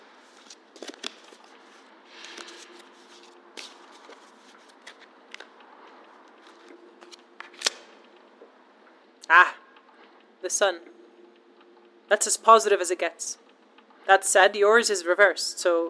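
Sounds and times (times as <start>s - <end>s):
deck of tarot cards being shuffled by hand: 0.2s - 8.1s
speech: 10.5s - 11.0s, 12.1s - 13.4s, 14.1s - 15.8s.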